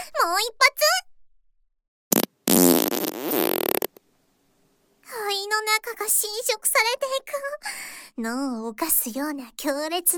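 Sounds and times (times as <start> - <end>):
speech: 0.3 - 1.1, 5.8 - 10.1
fart: 2.1 - 4.0.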